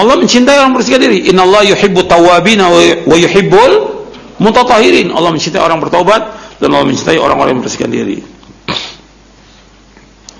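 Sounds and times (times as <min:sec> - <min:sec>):
speech: 0:00.0 - 0:08.8
hiss: 0:00.0 - 0:10.3
sneeze: 0:08.7 - 0:09.1.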